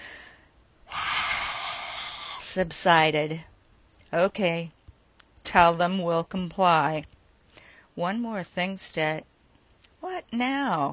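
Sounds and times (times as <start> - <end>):
man taking deep heavy breaths: 0.0 - 2.5
speech: 2.6 - 3.5, 4.1 - 4.8, 5.4 - 7.2, 8.0 - 9.3, 10.0 - 10.9.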